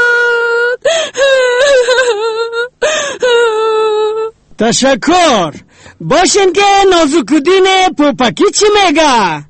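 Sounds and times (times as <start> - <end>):
person crying with joy in wailing sobs: 0.0 - 4.4
speech: 4.6 - 9.4.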